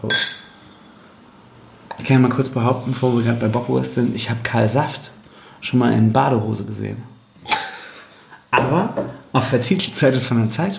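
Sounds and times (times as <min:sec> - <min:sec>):
speech: 0:00.0 - 0:00.4, 0:02.0 - 0:07.1, 0:08.5 - 0:10.7
beer glasses clinking in a toast: 0:00.0 - 0:00.6.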